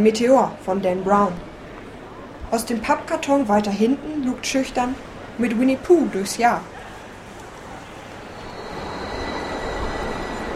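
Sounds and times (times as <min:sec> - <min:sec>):
speech: 0:00.0 - 0:01.5, 0:02.5 - 0:06.8
train arriving at a station, wheels and carriages rumbling: 0:04.9 - 0:10.5
faint high squeal of arriving train: 0:08.2 - 0:10.5.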